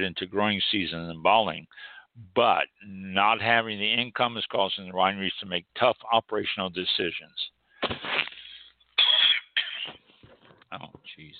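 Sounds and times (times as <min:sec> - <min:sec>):
speech: 0:00.0 - 0:08.3, 0:10.7 - 0:11.3
throat clearing: 0:09.0 - 0:10.1.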